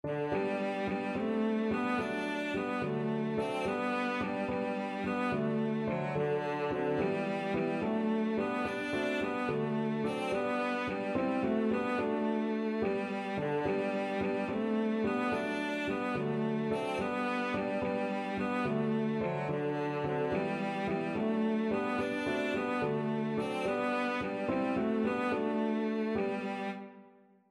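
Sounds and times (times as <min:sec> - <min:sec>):
cello melody: 0:00.0 - 0:27.1.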